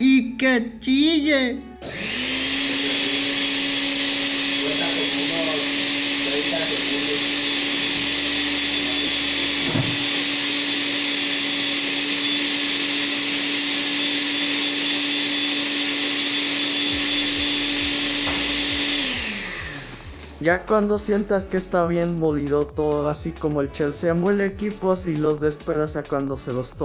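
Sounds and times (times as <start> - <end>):
speech: 0.0 - 1.7, 6.4 - 7.5, 20.4 - 26.8
blender grinding nuts and almonds: 1.8 - 20.5.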